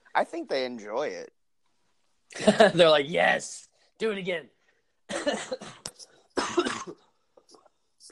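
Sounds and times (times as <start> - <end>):
speech: 0.2 - 1.4, 2.3 - 5.8
person coughing harshly: 5.1 - 7.2.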